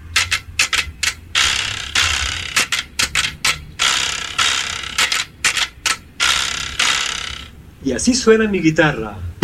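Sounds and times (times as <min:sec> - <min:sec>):
carraca ratchet rattle clacking: 0:00.0 - 0:07.6
speech: 0:07.8 - 0:09.3.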